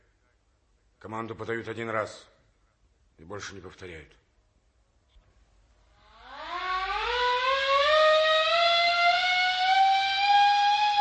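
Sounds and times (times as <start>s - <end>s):
speech: 1.0s - 2.4s, 3.2s - 4.2s
ship's siren winding up to a loud high wail, calling crew to assemble: 6.0s - 10.9s.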